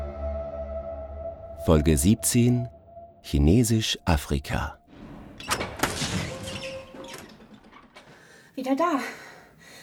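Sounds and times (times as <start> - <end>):
speech: 1.6 - 4.8, 8.6 - 9.2
heavy door thudding open with solid knocks: 4.9 - 8.3.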